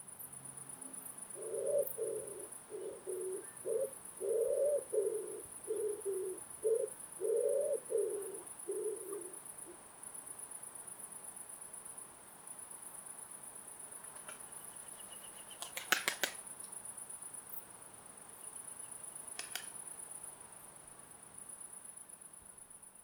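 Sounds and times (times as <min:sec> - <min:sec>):
Columba palumbus palumbus wood pigeon: 0:01.3 - 0:09.4, 0:14.0 - 0:16.4, 0:19.1 - 0:19.8.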